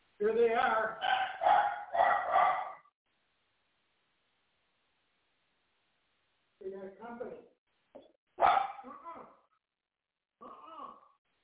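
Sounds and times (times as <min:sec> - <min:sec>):
speech: 0:00.2 - 0:01.6
dog barking and yipping: 0:00.6 - 0:02.9, 0:08.4 - 0:08.9.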